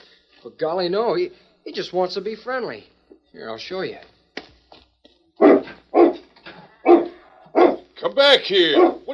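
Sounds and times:
speech: 0:00.4 - 0:04.1, 0:08.0 - 0:09.1
dog barking: 0:05.4 - 0:07.9, 0:08.7 - 0:09.1.

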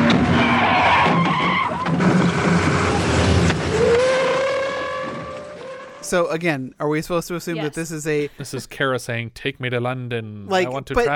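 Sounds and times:
dense roar of car engine and road noise: 0:00.0 - 0:06.1
car tires screeching in a long skid: 0:00.0 - 0:06.2
speech: 0:06.1 - 0:11.1.

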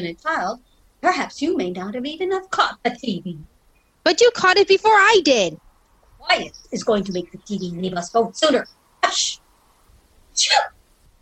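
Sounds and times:
speech: 0:00.0 - 0:05.6, 0:06.2 - 0:09.4, 0:10.4 - 0:10.8
sneeze: 0:10.4 - 0:10.8.

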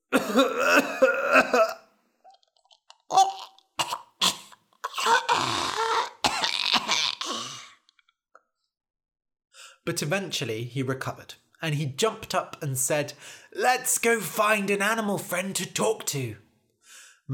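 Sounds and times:
helpless coughing fit with harsh hacking coughs: 0:00.1 - 0:01.9, 0:03.1 - 0:07.8
speech: 0:00.3 - 0:00.7, 0:09.9 - 0:16.4.

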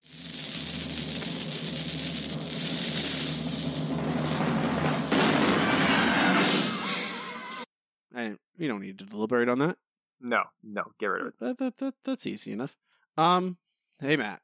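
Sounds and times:
noisy roar buildup of a cannon-firing sound effect: 0:00.2 - 0:05.1
cannon-firing sound effect blast: 0:03.8 - 0:07.6
speech: 0:08.6 - 0:14.4.

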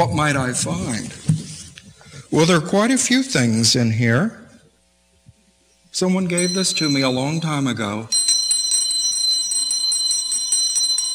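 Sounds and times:
speech: 0:00.0 - 0:01.3, 0:02.3 - 0:04.4, 0:06.0 - 0:08.2
small hand bell ringing: 0:06.4 - 0:11.1.

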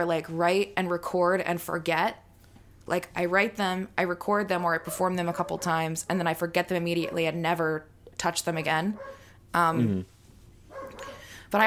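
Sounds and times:
speech: 0:00.0 - 0:02.2, 0:02.9 - 0:10.1
dog barking: 0:04.8 - 0:05.8, 0:07.0 - 0:07.2, 0:08.9 - 0:09.2, 0:10.7 - 0:11.3.

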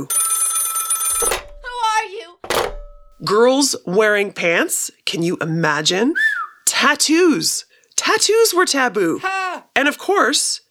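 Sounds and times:
speech: 0:00.0 - 0:00.2, 0:03.2 - 0:10.6
old-fashioned telephone bell ringing: 0:00.0 - 0:02.0.

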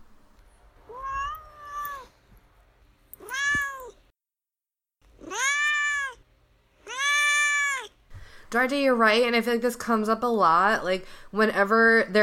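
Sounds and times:
domestic cat meowing: 0:00.9 - 0:02.2, 0:03.2 - 0:04.0, 0:05.2 - 0:06.2, 0:06.8 - 0:08.0
speech: 0:08.5 - 0:12.2.

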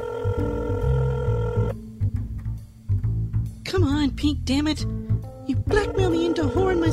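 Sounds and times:
phone ringing with a steady electronic tone: 0:00.0 - 0:01.7, 0:05.7 - 0:06.9
low rumbling background: 0:00.2 - 0:06.9
speech: 0:03.8 - 0:05.1, 0:05.7 - 0:06.9.

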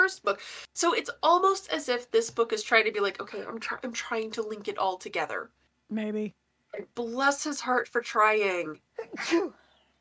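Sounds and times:
speech: 0:00.1 - 0:09.6
sneeze: 0:09.0 - 0:09.6.

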